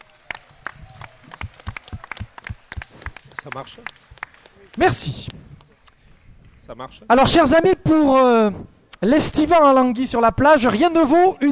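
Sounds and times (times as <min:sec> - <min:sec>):
small audience applauding with scattered uneven claps: 0:00.0 - 0:05.1
speech: 0:03.4 - 0:04.1, 0:04.8 - 0:05.4, 0:06.7 - 0:11.5.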